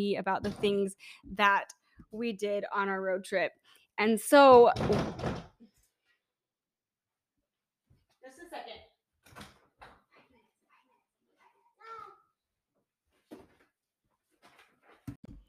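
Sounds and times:
speech: 0.0s - 5.5s
children banging on a door: 4.6s - 5.6s.

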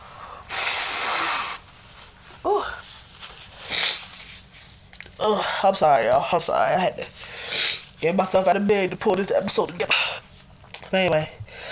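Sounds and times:
sick person blowing their nose: 0.2s - 1.7s, 3.6s - 4.2s
speech: 5.2s - 10.2s, 10.9s - 11.7s.

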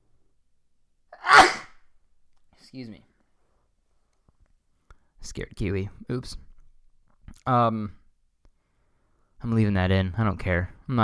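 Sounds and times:
sneeze: 1.2s - 1.8s
speech: 2.7s - 3.1s, 5.2s - 6.5s, 7.4s - 8.0s, 9.4s - 11.0s.

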